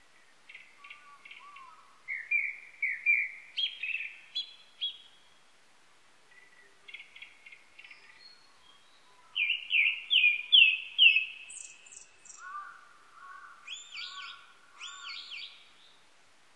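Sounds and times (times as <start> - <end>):
Japanese thrush singing whistled notes: 2.1 - 5.3, 6.5 - 12.5, 13.7 - 15.6.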